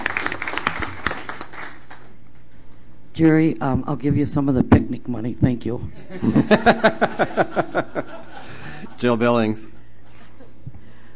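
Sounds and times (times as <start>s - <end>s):
small group applauding at a board meeting: 0.0s - 2.2s
speech: 3.2s - 7.9s, 9.0s - 9.8s
laughter: 6.0s - 9.2s.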